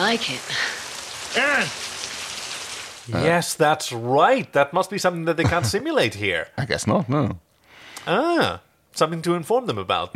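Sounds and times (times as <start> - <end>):
rain pattering on a surface: 0.0 - 3.2
speech: 0.1 - 1.9, 3.1 - 7.4, 8.0 - 10.1.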